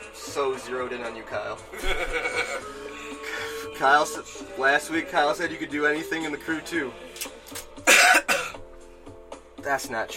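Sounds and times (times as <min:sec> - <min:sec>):
speech: 0:00.4 - 0:03.2, 0:03.8 - 0:07.6, 0:09.6 - 0:10.1
laughter: 0:01.7 - 0:03.2
person coughing: 0:07.8 - 0:08.6.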